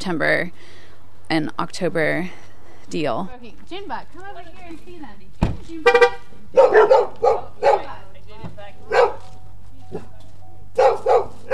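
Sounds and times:
speech: 0.0s - 9.0s
dogs barking: 6.5s - 8.1s, 8.8s - 9.3s, 10.7s - 11.5s.

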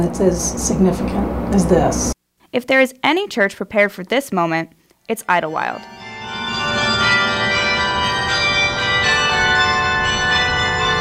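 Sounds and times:
speech: 0.0s - 6.0s
carillon church bells ringing from tower: 5.5s - 10.9s.

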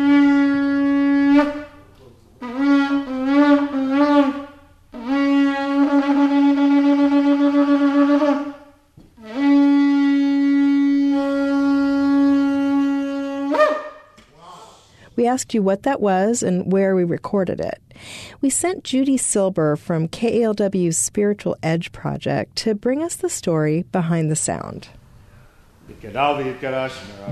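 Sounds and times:
shofar ram's horn being blown: 0.0s - 14.2s
speech: 15.3s - 25.0s, 26.0s - 27.3s.

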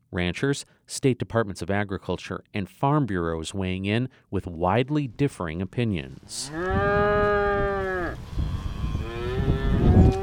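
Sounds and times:
speech: 0.1s - 7.7s
cow mooing on a farm in southwest Missouri: 6.4s - 8.2s, 8.8s - 10.2s
gusty wind rumbling on a farm in southwest Missouri: 6.5s - 10.2s.

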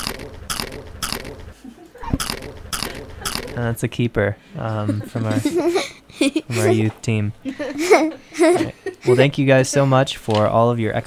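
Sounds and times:
crisp food being chewed with crackly bites: 0.0s - 1.2s
speech: 3.6s - 11.0s.

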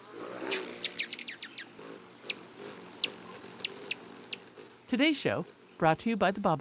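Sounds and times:
rufous hummingbird wing whir: 0.0s - 4.8s
rufous hummingbird chirps: 0.2s - 4.5s
speech: 4.9s - 6.5s.

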